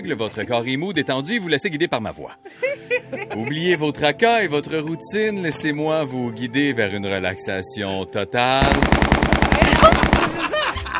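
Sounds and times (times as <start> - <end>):
speech: 0.0 - 10.0
laughter: 2.5 - 3.8, 9.4 - 10.9
machine gun fire from a war film on a TV: 8.6 - 10.6.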